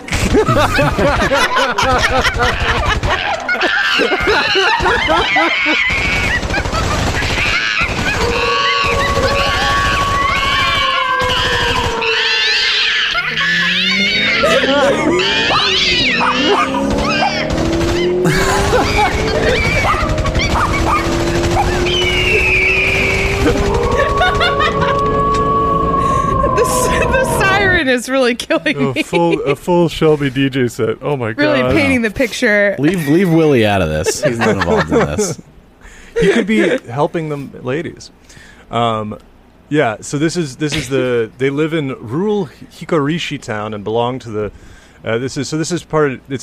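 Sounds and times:
laughter: 0.0s - 11.0s, 13.0s - 29.9s, 32.8s - 37.0s
speech: 0.3s - 6.2s, 27.9s - 35.5s, 36.2s - 46.4s
person imitating monkey calls with hoots and shrieks: 3.2s - 27.9s.

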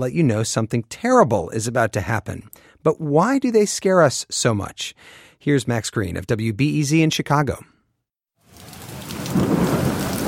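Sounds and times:
speech: 0.0s - 7.7s
steady rain of a thunderstorm: 8.4s - 10.2s
low rumbling thunder: 8.6s - 10.2s.

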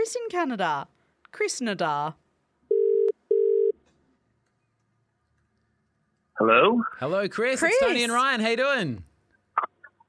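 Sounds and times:
speech: 0.1s - 2.2s, 6.4s - 9.7s
outgoing phone call ringing tone to Canada: 2.7s - 3.8s.

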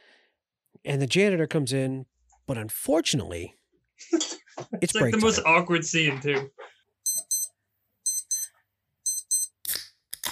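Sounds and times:
speech: 0.8s - 6.7s
electronic alarm double-beeps: 7.1s - 7.5s, 8.1s - 9.5s.

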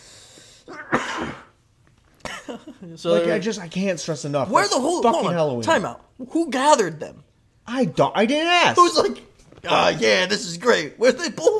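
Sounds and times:
quiet room noise: 0.0s - 11.5s
harsh raspy cough: 0.7s - 1.6s
speech: 2.8s - 11.5s.

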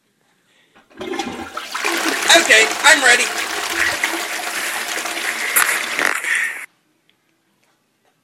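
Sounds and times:
toilet flushing with a rush of water: 0.8s - 6.7s
speech: 2.8s - 3.9s.

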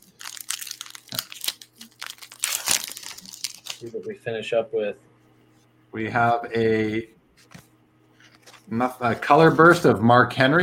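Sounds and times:
trading card pack plastic wrapper being torn open: 0.0s - 3.8s
speech: 3.8s - 5.1s, 5.9s - 7.2s, 8.7s - 10.6s.

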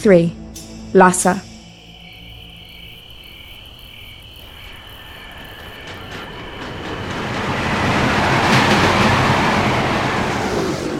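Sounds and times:
speech: 0.0s - 1.5s
passenger train of the Tangula Railway rumbling along rails at night in the Himalayas: 0.6s - 10.9s.

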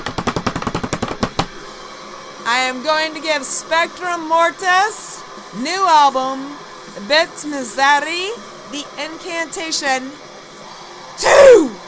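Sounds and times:
improvised drum roll of taps on a hard surface: 0.0s - 1.5s
speech: 2.5s - 10.2s.

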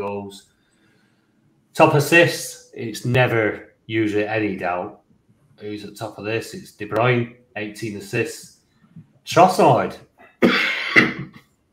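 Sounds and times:
speech: 0.0s - 0.5s, 1.8s - 5.0s, 5.6s - 10.7s
harsh raspy cough: 10.2s - 11.5s.

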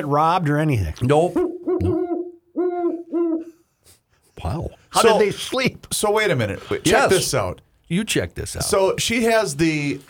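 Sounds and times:
speech: 0.0s - 2.0s, 4.4s - 10.0s
owl hooting: 1.4s - 3.6s.

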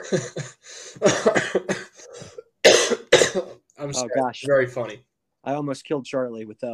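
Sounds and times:
person in a coughing fit: 0.0s - 3.6s
speech: 0.1s - 1.8s, 3.8s - 6.7s.

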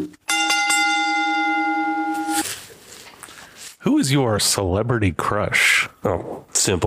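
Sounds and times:
loud bell ringing: 0.3s - 2.5s
speech: 3.8s - 6.8s.

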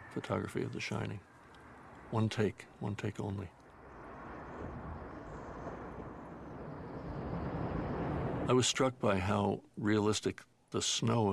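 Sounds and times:
speech: 0.2s - 1.3s, 2.1s - 3.6s, 8.5s - 11.3s
airplane landing: 3.7s - 8.5s.

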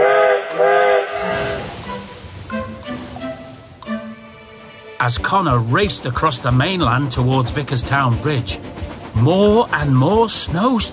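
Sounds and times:
steam train whistle: 0.0s - 2.1s
hissing steam from a steam train: 0.0s - 3.2s
speech: 5.0s - 10.9s.

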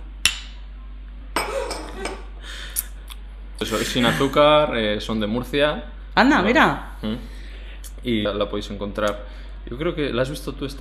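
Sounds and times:
glasses clinking in a toast: 1.4s - 2.3s
speech: 3.6s - 7.4s, 8.0s - 10.7s.

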